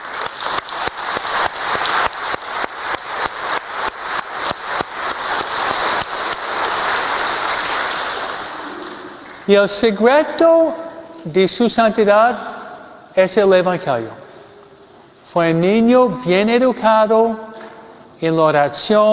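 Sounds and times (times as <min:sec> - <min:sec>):
large crowd applauding: 0:00.0 - 0:09.5
speech: 0:09.5 - 0:12.5, 0:13.2 - 0:14.2, 0:15.3 - 0:17.4, 0:18.2 - 0:19.1.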